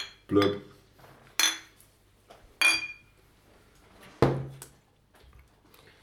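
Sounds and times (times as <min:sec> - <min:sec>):
beer glasses clinking together in a toast: 0:00.0 - 0:00.6, 0:01.4 - 0:01.8, 0:02.6 - 0:03.1
speech: 0:00.3 - 0:00.7.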